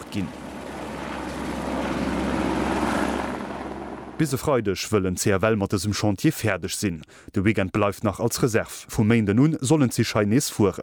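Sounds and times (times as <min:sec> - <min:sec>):
helicopter delivering nets flying overhead: 0:00.0 - 0:04.6
speech: 0:00.1 - 0:00.4, 0:04.2 - 0:10.8.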